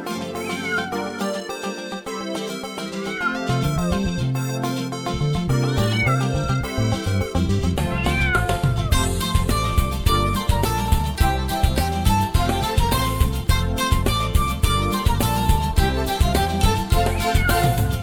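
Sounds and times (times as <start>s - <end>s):
loud busy music with a steady beat: 0.0s - 18.0s
cat meowing: 0.3s - 1.3s, 3.0s - 4.0s, 7.9s - 8.9s, 17.0s - 17.9s.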